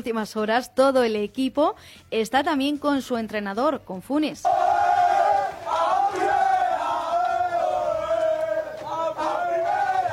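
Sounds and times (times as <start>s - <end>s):
speech: 0.0s - 4.6s
footballers cheering and chanting bursting into a press room: 4.4s - 10.1s.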